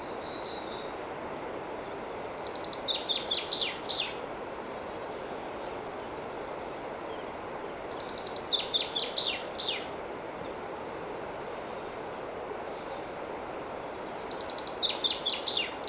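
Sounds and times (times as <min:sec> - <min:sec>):
continuous hiss: 0:00.0 - 0:15.8
common chaffinch Fringilla coelebs singing: 0:02.4 - 0:04.2, 0:07.9 - 0:09.9, 0:14.0 - 0:15.8.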